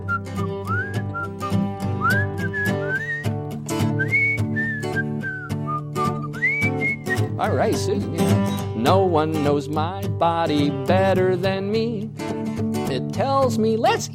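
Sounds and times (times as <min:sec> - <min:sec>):
cheerful whistled tune: 0:00.0 - 0:07.6
speech: 0:07.4 - 0:12.3, 0:13.0 - 0:14.1.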